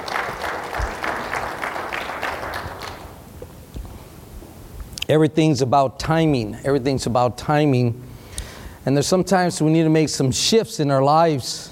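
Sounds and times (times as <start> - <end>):
room full of people applauding: 0.0 - 3.2
room noise: 0.0 - 11.7
speech: 5.1 - 8.1, 8.8 - 11.7.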